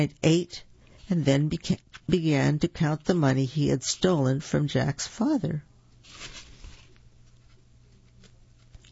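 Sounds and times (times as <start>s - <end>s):
speech: 0.0s - 6.4s
book page turning: 1.7s - 2.2s, 6.0s - 8.8s
paper crinkling: 6.0s - 8.8s.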